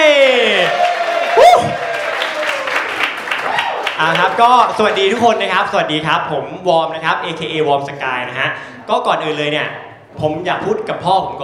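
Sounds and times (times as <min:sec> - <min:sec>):
audience members whooping and calling out: 0:00.0 - 0:02.8, 0:03.4 - 0:03.9
audience clapping: 0:00.4 - 0:05.4
speech: 0:04.4 - 0:11.4.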